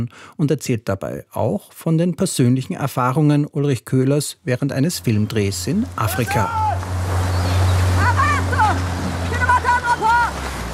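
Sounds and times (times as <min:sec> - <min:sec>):
speech: 0:00.0 - 0:06.9
wind: 0:04.5 - 0:10.7
indistinct voices calling: 0:05.0 - 0:10.7
motorboat engine droning, approaching a beach: 0:05.0 - 0:10.7
surf: 0:05.0 - 0:10.7.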